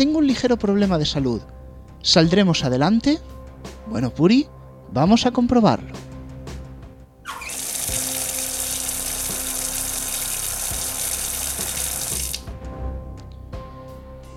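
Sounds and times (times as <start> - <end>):
speech: 0.0 - 6.0
water gushing from a tap: 7.3 - 12.5.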